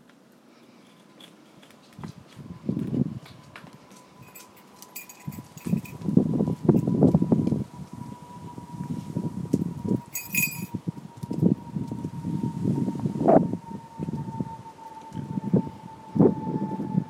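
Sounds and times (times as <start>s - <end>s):
faint thin whine: 0.1s - 17.0s
gusty rustles: 1.0s - 17.0s
aircraft passing overhead outdoors: 2.4s - 17.0s.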